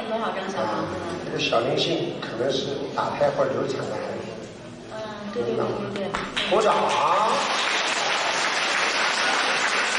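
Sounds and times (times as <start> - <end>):
speech: 0.1 - 4.3, 5.4 - 7.6
audience applause: 6.4 - 9.9.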